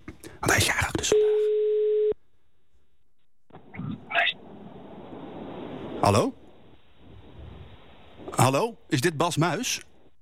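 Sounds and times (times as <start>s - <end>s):
telephone ringing tone as a call is placed: 1.1s - 2.2s
speech: 6.1s - 6.3s, 8.5s - 9.9s.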